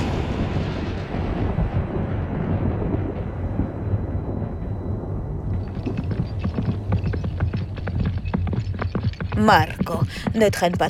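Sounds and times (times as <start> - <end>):
sharp crackling bursts of thunder: 0.0 - 8.4
thunder rumbling from a storm: 0.0 - 10.8
speech: 9.4 - 10.8.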